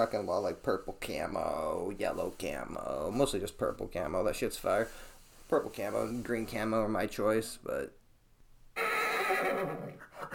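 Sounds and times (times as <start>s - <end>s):
speech: 0.0s - 8.0s, 9.4s - 10.3s
horse neighing: 8.8s - 10.3s.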